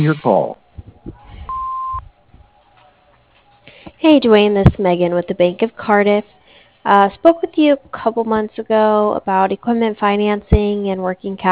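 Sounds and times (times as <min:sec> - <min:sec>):
speech: 0:00.0 - 0:01.2, 0:04.0 - 0:11.5
answering machine recording beep: 0:01.5 - 0:02.0.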